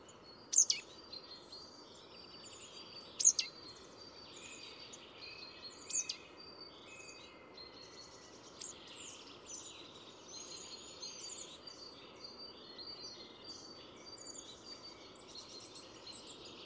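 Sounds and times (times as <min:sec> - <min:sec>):
soft twittering: 0:00.0 - 0:16.5
Marsh tit Poecile palustris calling with sharp high chirps: 0:00.5 - 0:00.9, 0:03.2 - 0:03.5, 0:05.9 - 0:06.2.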